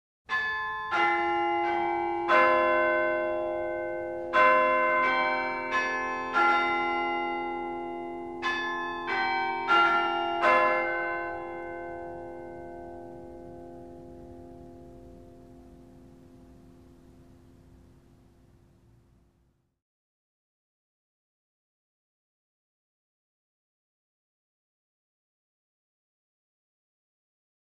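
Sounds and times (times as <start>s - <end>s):
school bell: 0.3s - 18.3s.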